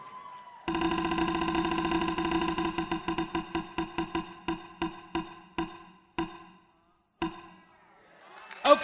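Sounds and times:
prize wheel spinning with ratcheting clicks: 0:00.7 - 0:06.6
low hum: 0:00.7 - 0:07.6.

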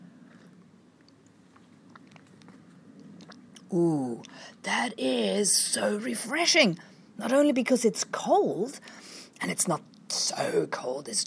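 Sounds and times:
person sipping cold brew cascara: 0:00.0 - 0:04.6
low steady hum: 0:00.0 - 0:11.2
speech: 0:03.7 - 0:11.2.

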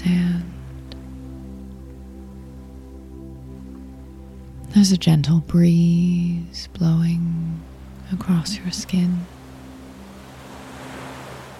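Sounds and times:
ocean waves coming in and moving out: 0:00.0 - 0:11.5
speech: 0:04.7 - 0:09.3.

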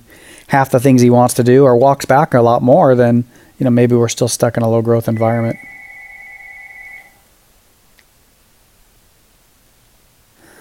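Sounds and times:
speech: 0:00.5 - 0:05.7
phone ringing: 0:05.1 - 0:07.2.

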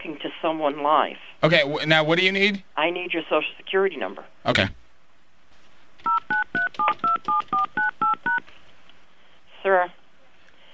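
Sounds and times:
speech: 0:00.4 - 0:04.8, 0:09.6 - 0:10.0
dual-pitched telephone keypad tones: 0:06.0 - 0:08.4.

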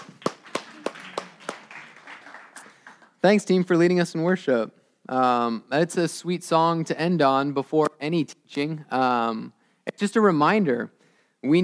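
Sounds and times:
congregation clapping at a church worship service: 0:00.0 - 0:03.2
speech: 0:03.2 - 0:11.6.

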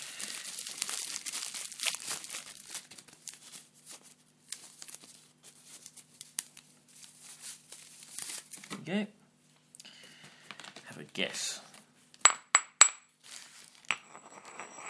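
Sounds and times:
crinkly bubble wrap packaging unwrapped from around a pestle and mortar: 0:00.0 - 0:08.8, 0:10.5 - 0:11.0, 0:13.2 - 0:13.9
speech: 0:08.8 - 0:09.2, 0:11.2 - 0:11.6.

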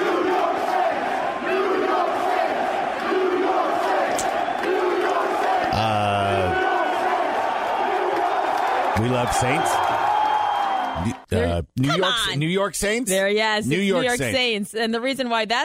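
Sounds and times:
large arena crowd chanting in unison: 0:00.0 - 0:09.0
speech: 0:09.0 - 0:09.9, 0:11.0 - 0:15.6.

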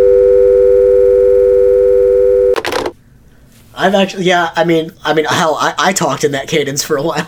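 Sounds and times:
telephone tone after call ends: 0:00.0 - 0:02.9
speech: 0:03.8 - 0:07.2.

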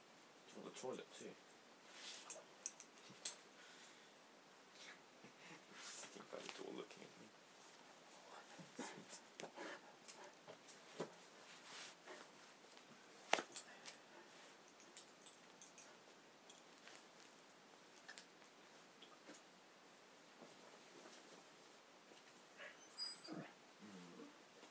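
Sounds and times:
rustling and scratching noises: 0:00.5 - 0:03.5, 0:04.7 - 0:19.5, 0:20.2 - 0:22.5
speech: 0:00.8 - 0:01.6
dog whimpering softly: 0:22.6 - 0:24.3.

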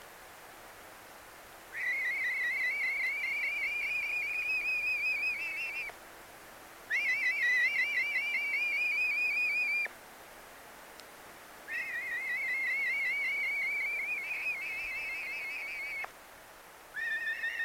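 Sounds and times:
juvenile European honey buzzard begging calls in Scotland: 0:01.8 - 0:05.9, 0:06.9 - 0:09.9, 0:11.7 - 0:16.1, 0:17.0 - 0:17.6.

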